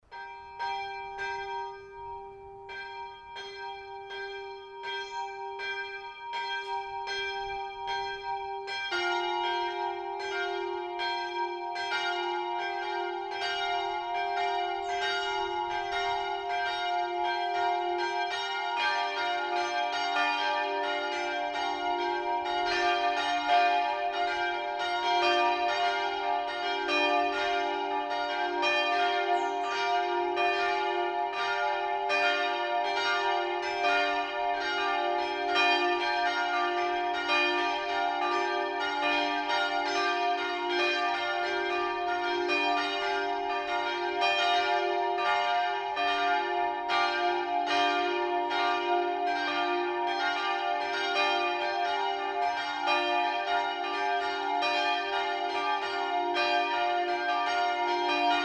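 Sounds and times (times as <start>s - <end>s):
multi-voice peal of bells tuned d2 f2 g2: 0.0s - 58.4s.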